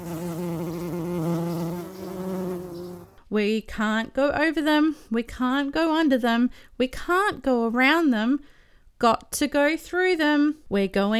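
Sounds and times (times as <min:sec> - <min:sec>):
bees buzzing: 0:00.0 - 0:03.2
speech: 0:03.3 - 0:11.1.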